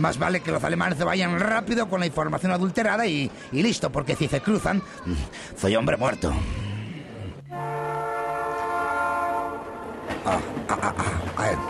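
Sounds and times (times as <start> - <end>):
speech: 0.0 - 6.6, 10.3 - 11.6
train horn as a train arrives at a station: 7.5 - 10.3
train clattering at a station: 9.6 - 11.6.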